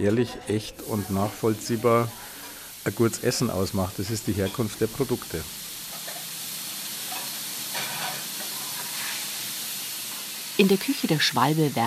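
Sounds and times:
speech: 0.0 - 5.6, 10.6 - 11.8
veal for a schnitzel sizzling in a frying pan in a restaurant kitchen: 0.5 - 11.8.

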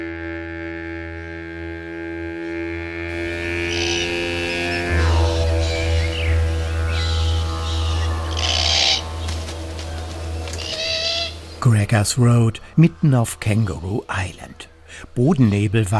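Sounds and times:
low steady rumble: 2.7 - 11.6
pair of glossy black cockatoos screeching and croaking: 3.1 - 11.6
speech: 11.9 - 15.9.

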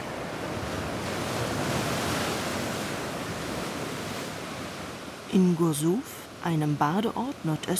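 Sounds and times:
rough Black Sea surf crashing against rocks of a small bay at Gursuf in Crimea: 0.0 - 7.7
speech: 5.3 - 7.7.

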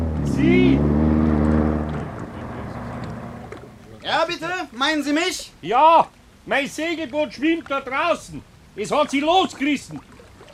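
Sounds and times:
motorboat engine droning on the water: 0.0 - 4.4
speech: 0.4 - 1.0, 4.2 - 10.1.

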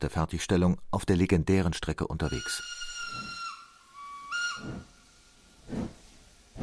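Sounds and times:
speech: 0.0 - 3.2, 4.6 - 4.9
steam locomotive whistle on the Baghdad Railway in Turkey: 2.4 - 5.1
steam locomotive hissing and chuffing on the Baghdad Railway in Turkey: 4.0 - 6.6.

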